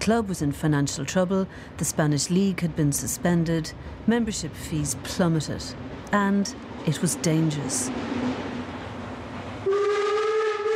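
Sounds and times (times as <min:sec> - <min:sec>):
speech: 0:00.0 - 0:08.3
train rumbling along tracks: 0:00.0 - 0:10.7
train whistle: 0:09.6 - 0:10.7.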